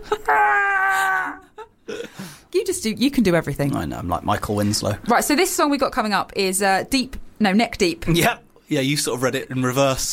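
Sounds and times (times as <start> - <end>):
man's voice imitating a man screaming as he falls off a tower: 0.1 - 1.5
speech: 2.8 - 10.1.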